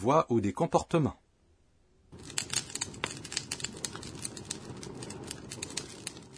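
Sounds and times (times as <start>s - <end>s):
speech: 0.0s - 1.2s
campfire flames crackling: 2.1s - 6.3s.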